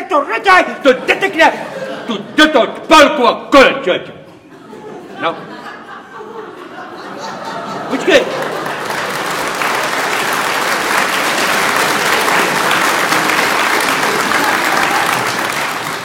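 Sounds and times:
speech: 0:00.1 - 0:04.2, 0:05.2 - 0:05.6, 0:07.9 - 0:08.5
laughter: 0:00.8 - 0:02.7, 0:04.3 - 0:16.0
audience applause: 0:07.6 - 0:16.0.

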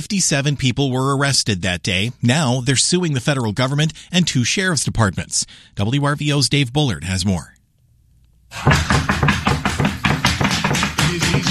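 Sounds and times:
speech: 0:00.0 - 0:07.6, 0:08.5 - 0:09.4
fists pounding on a door: 0:08.6 - 0:11.5.

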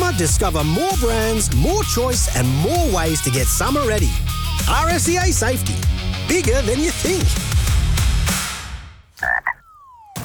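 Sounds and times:
speech: 0:00.2 - 0:07.5
dull thumping sounds: 0:09.2 - 0:10.2
frog croaking: 0:09.2 - 0:10.2.

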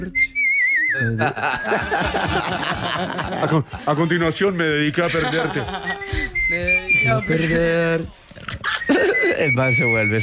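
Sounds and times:
speech: 0:00.0 - 0:00.3, 0:00.9 - 0:10.2
person whistling a national anthem: 0:00.0 - 0:02.6, 0:05.2 - 0:10.2
people chuckling: 0:00.0 - 0:10.2.

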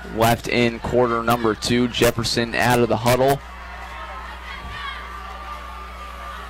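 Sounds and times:
large outdoor football stadium crowd roaring during a third-and-four play: 0:00.0 - 0:06.4
speech: 0:00.1 - 0:03.5.

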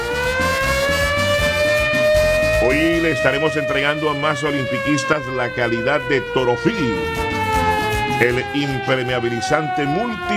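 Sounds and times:
faint low pulsing: 0:00.0 - 0:03.6, 0:05.4 - 0:10.3
siren sound effect used in a radio prize promotion: 0:00.0 - 0:10.3
speech: 0:02.7 - 0:07.4, 0:08.2 - 0:10.3.

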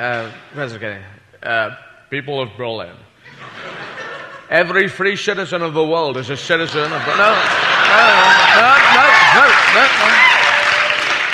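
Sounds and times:
speech: 0:00.0 - 0:03.5, 0:04.5 - 0:10.3
laughter: 0:03.3 - 0:04.7, 0:06.3 - 0:10.5
crowd applauding: 0:06.7 - 0:11.3
people whooping and cheering: 0:07.1 - 0:11.3.

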